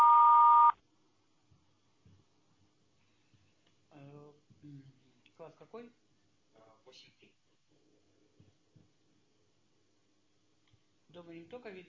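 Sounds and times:
answering machine beep: 0.0s - 0.7s
speech: 5.4s - 6.0s, 6.6s - 7.9s, 11.1s - 11.8s.

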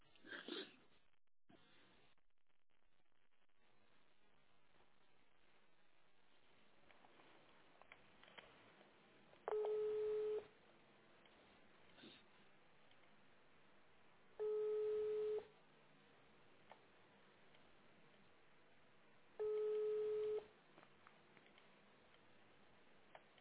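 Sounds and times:
telephone ringback tones while dialing: 9.5s - 10.5s, 14.4s - 15.5s, 19.4s - 20.5s.

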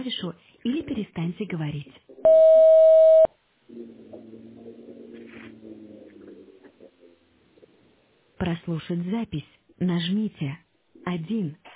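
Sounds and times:
speech: 0.2s - 0.5s, 1.2s - 2.7s, 8.7s - 11.6s
voicemail beep signalling start of recording: 2.3s - 3.3s.

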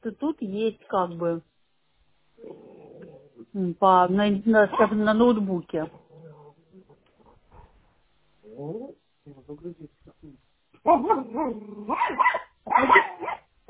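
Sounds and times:
speech: 0.0s - 1.5s, 3.4s - 6.0s, 8.5s - 13.4s
dog barking: 4.7s - 5.0s, 10.8s - 13.5s.

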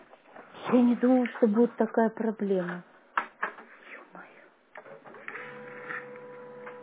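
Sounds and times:
speech: 0.7s - 2.9s
printer printing pages over a phone line: 5.0s - 6.8s.

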